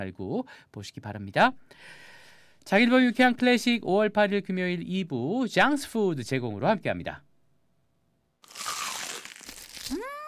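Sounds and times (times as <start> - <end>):
speech: 0.0 - 7.3
crunch of biting into crispy crumble-coated fried chicken: 8.4 - 10.2.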